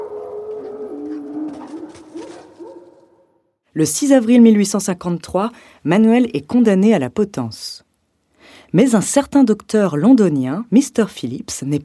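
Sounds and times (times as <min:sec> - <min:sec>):
wolves howling: 0:00.0 - 0:03.4
speech: 0:03.8 - 0:07.9, 0:08.5 - 0:11.8.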